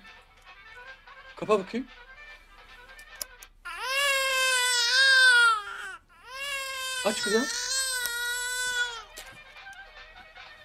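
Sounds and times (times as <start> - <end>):
speech: 1.4 - 2.0, 7.0 - 7.7
baby crying: 3.6 - 9.1.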